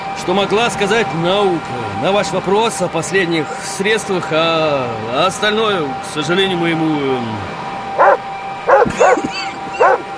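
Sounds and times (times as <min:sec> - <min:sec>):
speech: 0:00.2 - 0:07.6
dog barking and yelping: 0:08.0 - 0:10.1.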